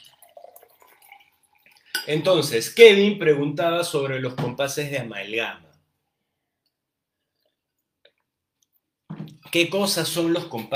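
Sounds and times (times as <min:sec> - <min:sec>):
water being poured or sipped, trickling and dripping: 0:00.0 - 0:02.1
speech: 0:02.0 - 0:05.7, 0:09.5 - 0:10.7.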